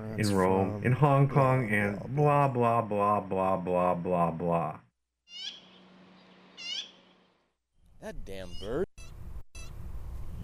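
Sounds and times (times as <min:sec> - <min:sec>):
speech: 0:00.2 - 0:05.6, 0:08.0 - 0:08.9
bird calling with chirring bursts and warbling squawks: 0:05.3 - 0:07.2.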